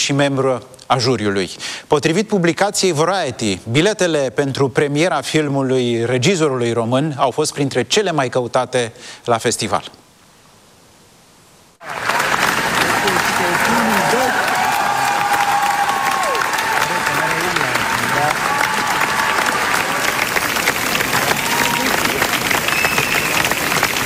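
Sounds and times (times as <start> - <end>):
speech: 0.0 - 10.0
faint cheers: 11.8 - 23.8
large standing crowd applauding in a hall after a film premiere: 11.8 - 24.0.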